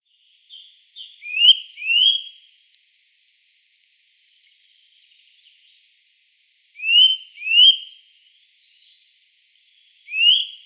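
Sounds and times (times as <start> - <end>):
Sitta europaea Eurasian nuthatch whistled calls: 0.4 - 2.3, 6.8 - 9.0, 10.1 - 10.6.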